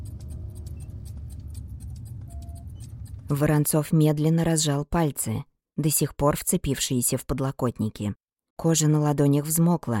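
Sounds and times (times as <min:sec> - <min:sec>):
muffled low hum of ship's systems in a command centre: 0:00.0 - 0:03.6
chronometer ticking: 0:00.0 - 0:03.7
faint electronic tone: 0:02.2 - 0:02.9
speech: 0:03.3 - 0:09.9.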